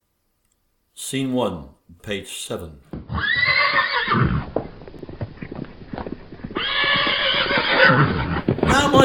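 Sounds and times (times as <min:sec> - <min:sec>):
speech: 0:01.1 - 0:03.4
clopping hooves of agitated horses: 0:02.9 - 0:09.0
spooked horses whinnying loudly and shrilly: 0:03.0 - 0:09.0.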